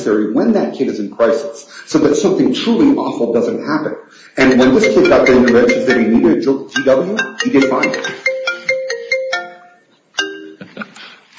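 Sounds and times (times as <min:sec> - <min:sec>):
speech: 0:00.0 - 0:08.4
faint courtroom noise: 0:00.0 - 0:11.3
iPad electronic alert tone in a courtroom: 0:04.4 - 0:10.6.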